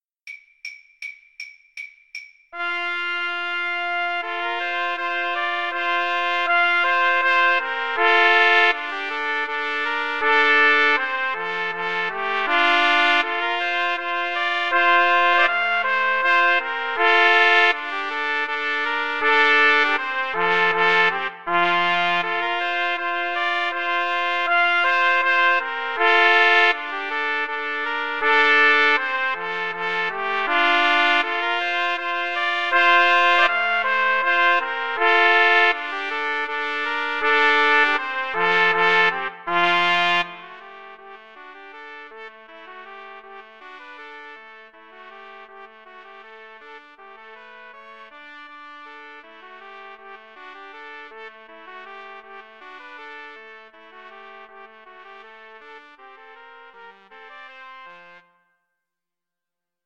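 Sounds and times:
Slavonic trumpet trio playing: 2.6 - 42.3.

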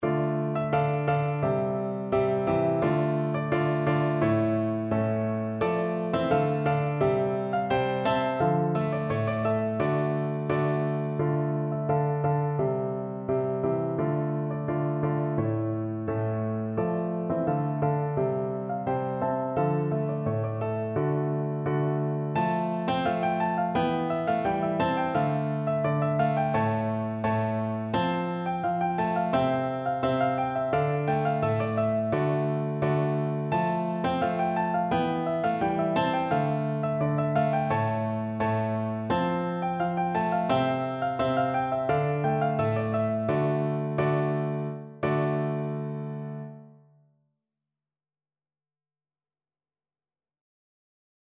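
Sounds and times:
bransle played on piano: 0.0 - 46.7.

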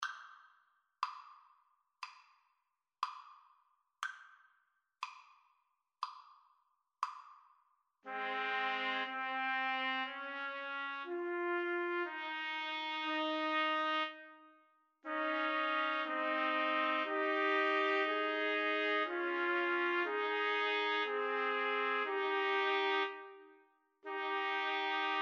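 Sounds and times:
trumpet trio playing a romance: 8.1 - 14.4, 15.0 - 25.2.

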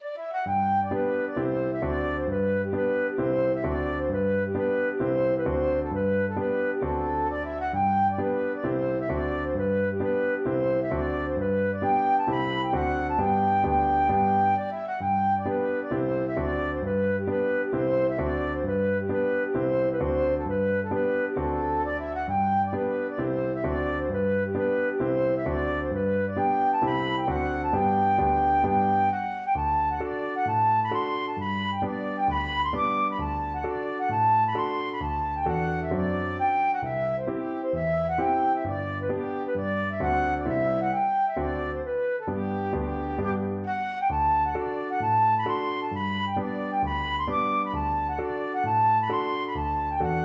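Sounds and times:
flute playing a hornpipe: 0.0 - 50.2.

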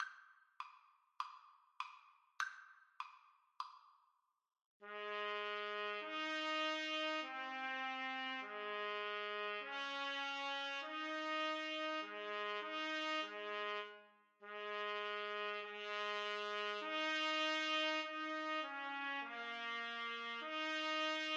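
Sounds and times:
trumpet playing national anthem: 4.8 - 21.3.

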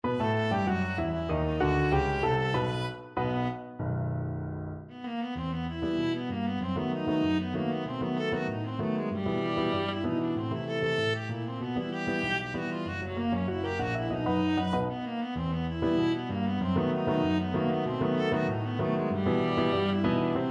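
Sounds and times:
viola playing: 0.0 - 3.8, 4.9 - 20.4.

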